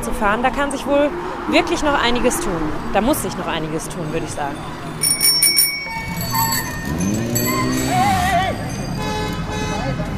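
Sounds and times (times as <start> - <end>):
road noise: 0.0 - 10.1
speech: 0.1 - 4.9
constant engine rumble of heavy street traffic: 4.6 - 9.6
car horns honking at a busy intersection: 5.5 - 10.1.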